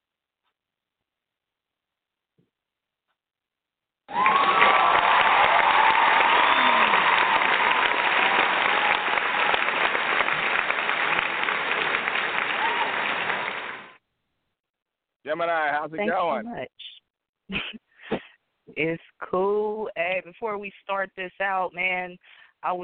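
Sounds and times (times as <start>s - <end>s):
faint whoops and cheers: 4.1s - 10.6s, 12.2s - 13.9s
crowd applauding: 4.1s - 14.0s
speech: 15.4s - 16.7s, 18.8s - 22.8s.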